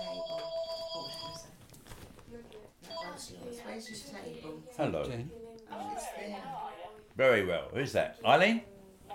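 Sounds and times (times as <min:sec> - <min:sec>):
telephone ringing with electronic tones: 0:00.0 - 0:01.6
speech: 0:03.8 - 0:05.4, 0:07.2 - 0:08.7.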